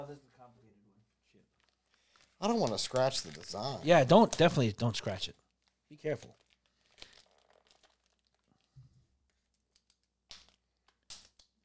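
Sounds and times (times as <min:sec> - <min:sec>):
speech: 0:00.1 - 0:00.7, 0:02.4 - 0:06.4
tape tearing from a package of boards: 0:01.6 - 0:04.5, 0:05.4 - 0:11.4.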